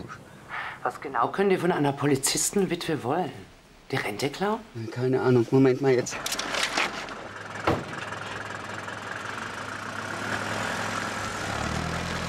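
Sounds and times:
speech: 0.8 - 6.5
taxi engine running as the car pulls away: 6.2 - 12.2.

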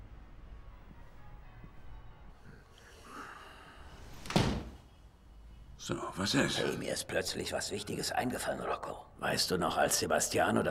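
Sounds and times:
balcony door pushed shut with a solid thud: 4.2 - 4.8
speech: 5.9 - 10.7.

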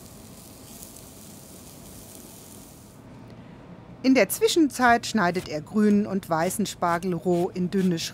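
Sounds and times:
roulade slices sizzling in a hot pan: 0.0 - 2.9
speech: 4.0 - 8.1.

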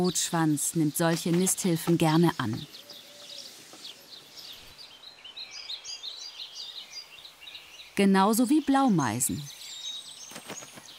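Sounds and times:
speech: 0.0 - 2.8, 8.0 - 9.6
Eurasian tree sparrow chirping and twittering: 0.0 - 10.9.

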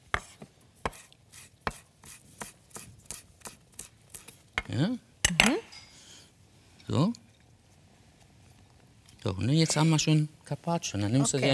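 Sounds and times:
knife chopping fresh mint: 0.0 - 4.8
speech: 4.7 - 5.1, 9.3 - 11.5.

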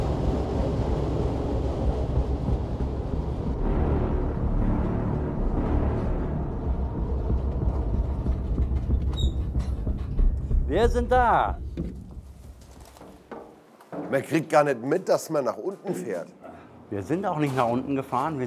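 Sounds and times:
mine train riding through a narrow tunnel into a mountain: 0.0 - 13.0
mine train high squeaks: 8.8 - 10.0
speech: 10.8 - 12.0, 14.1 - 18.4.

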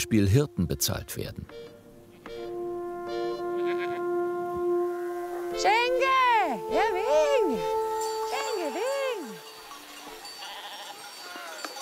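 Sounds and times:
speech: 0.0 - 1.7, 5.6 - 7.8
noisy outdoor background: 0.0 - 11.8
sheep flock bleating while driven down from mountain pasture: 3.5 - 4.1, 10.3 - 11.7.

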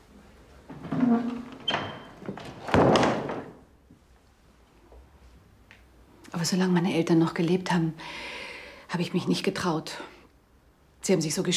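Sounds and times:
door creaking: 0.7 - 3.7
speech: 6.4 - 8.3, 8.9 - 10.2, 11.1 - 11.5.

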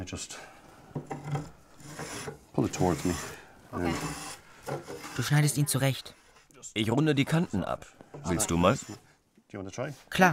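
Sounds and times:
speech: 0.0 - 1.5, 2.2 - 10.3
hand plane shaving a clamped piece of wood: 1.2 - 5.2, 8.4 - 9.0.

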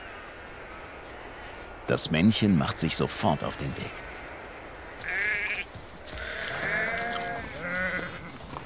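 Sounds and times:
speech: 1.9 - 4.2
herd of goats bleating: 5.0 - 8.4.

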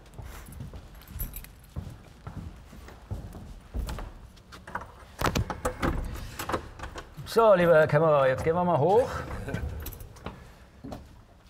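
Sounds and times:
keys jangling against metal: 0.0 - 2.1, 9.4 - 10.5
speech: 7.3 - 9.7.

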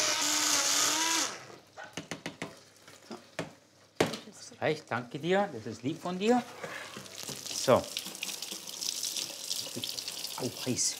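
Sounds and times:
blender mixing butter and white wine: 0.0 - 1.6
speech: 4.6 - 6.8, 7.6 - 8.0, 10.4 - 10.9.

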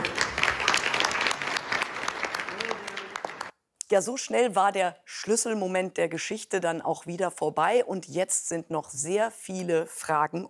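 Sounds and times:
room full of people applauding: 0.0 - 3.5
speech: 3.9 - 10.4.

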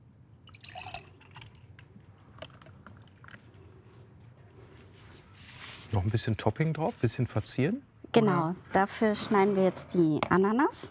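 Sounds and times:
mocktail pouring into a glass: 0.4 - 3.4
speech: 5.9 - 10.8.

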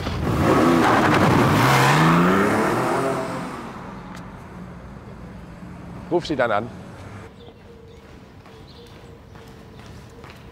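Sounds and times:
car engine revving and accelerating: 0.1 - 6.1
speech: 6.2 - 6.8.

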